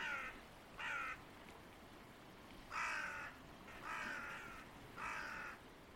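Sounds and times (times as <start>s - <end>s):
crow cawing: 0.0s - 1.2s, 2.7s - 5.6s
light outdoor hiss: 0.0s - 5.9s.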